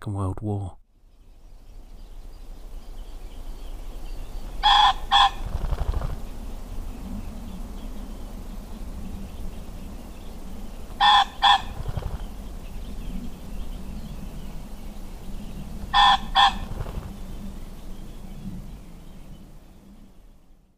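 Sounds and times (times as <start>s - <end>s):
speech: 0.0s - 0.8s
low outdoor rumble of wind: 1.3s - 20.7s
pheasant rooster crowing: 4.4s - 6.3s, 9.3s - 13.8s, 14.6s - 17.4s.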